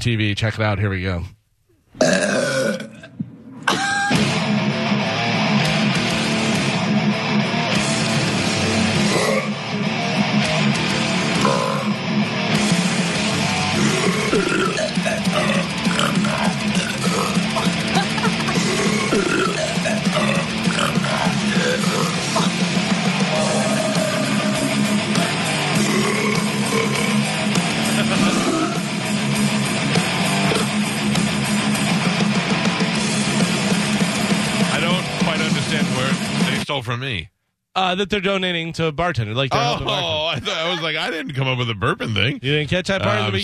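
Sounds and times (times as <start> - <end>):
speech: 0.0 - 1.4, 36.7 - 43.4
people burping deeply: 2.0 - 4.2, 9.0 - 9.6, 11.3 - 12.0, 13.7 - 22.6, 25.2 - 28.9, 30.4 - 30.8
death metal with distorted guitars and pounding drums: 3.7 - 36.6
laughter: 17.4 - 19.3, 27.7 - 28.5, 39.5 - 41.4.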